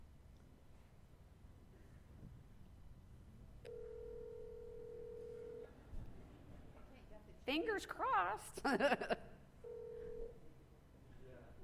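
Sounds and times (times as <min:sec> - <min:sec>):
faint noisy room background: 0:00.0 - 0:11.6
cell phone call electronic ringing tone: 0:03.7 - 0:05.8, 0:09.6 - 0:10.4
speech: 0:07.5 - 0:09.3.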